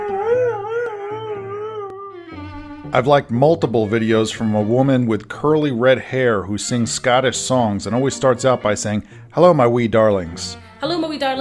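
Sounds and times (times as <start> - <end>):
huskies howling together: 0.0 - 2.4
speech: 2.9 - 11.3.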